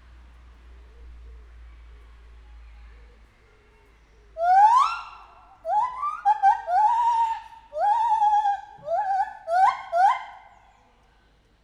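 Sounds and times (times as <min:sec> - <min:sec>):
captive white-handed gibbon whistled calls at a zoo: 0:04.4 - 0:10.7.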